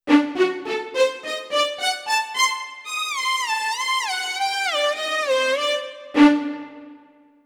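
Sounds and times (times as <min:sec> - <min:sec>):
lead melody: 0:00.1 - 0:07.3.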